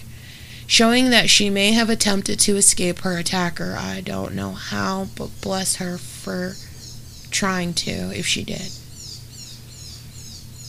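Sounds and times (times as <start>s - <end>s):
low hum: 0.0s - 10.6s
speech: 0.7s - 6.7s, 7.4s - 8.8s
bird chirping outside an open window: 3.7s - 10.6s.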